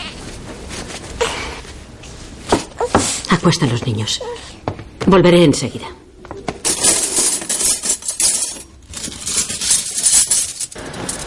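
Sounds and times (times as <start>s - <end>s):
speech: 3.3s - 6.0s
silver cutlery clinking as a woman bundles it into cloth: 6.6s - 11.2s.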